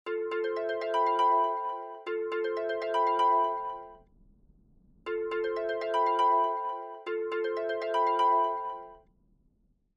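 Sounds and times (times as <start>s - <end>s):
phone ringtone: 0.1s - 3.9s, 5.2s - 9.0s.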